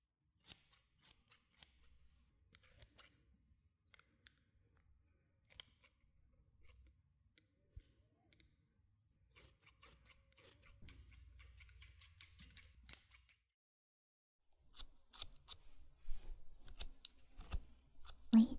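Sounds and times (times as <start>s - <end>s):
scissors snipping through slightly damp hair to trim bangs: 0.4s - 1.9s, 5.5s - 6.8s, 9.4s - 13.4s, 14.7s - 18.5s.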